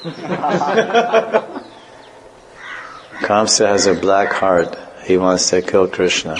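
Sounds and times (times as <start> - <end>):
speech: 0.0 - 1.6, 3.2 - 6.3
laughter: 0.0 - 2.0
parrot squawking: 1.6 - 4.8.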